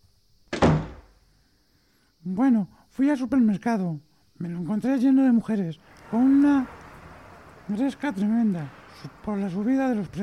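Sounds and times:
door swinging shut with a solid thud: 0:00.5 - 0:01.2
speech: 0:02.3 - 0:06.8, 0:07.7 - 0:10.2.

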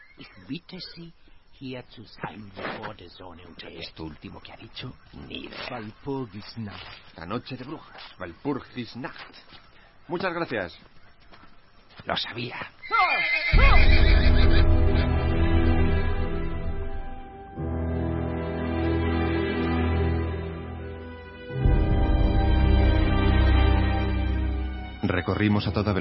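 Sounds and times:
wind on a night road: 0:00.0 - 0:25.9
speech: 0:00.2 - 0:10.9, 0:12.0 - 0:14.3, 0:25.2 - 0:25.9
restless horses neighing and whinnying on a windy night road: 0:12.8 - 0:15.3.

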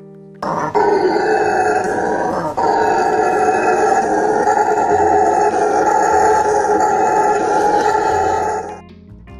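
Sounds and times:
howler monkey roaring vocalization: 0:00.4 - 0:08.8.

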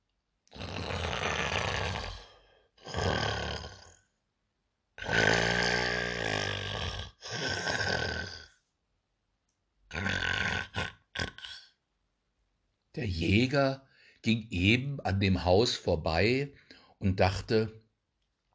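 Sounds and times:
human voice imitating loud snoring of a sleeping wolf: 0:00.5 - 0:04.0, 0:05.0 - 0:08.6, 0:09.9 - 0:11.8
speech: 0:13.0 - 0:17.8.

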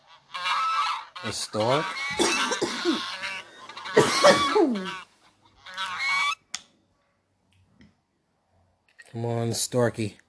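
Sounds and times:
geese honking: 0:00.0 - 0:06.4
speech: 0:01.2 - 0:03.2, 0:04.0 - 0:05.1, 0:09.2 - 0:10.2.

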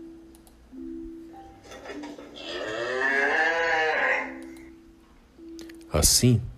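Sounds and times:
cow mooing: 0:02.4 - 0:04.4
speech: 0:05.9 - 0:06.5.

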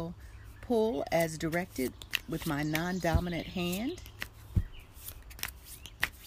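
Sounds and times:
speech: 0:00.0 - 0:04.1
deck of cards being shuffled: 0:01.2 - 0:06.2.

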